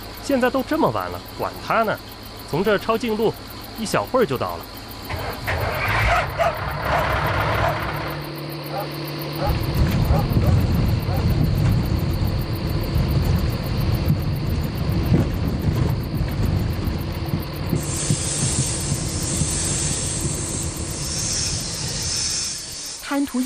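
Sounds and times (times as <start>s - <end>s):
road noise hiss: 0.0s - 23.4s
speech: 0.3s - 6.6s, 23.1s - 23.4s
heavy truck driving along a patrol access road above a buried pipeline: 5.0s - 23.4s.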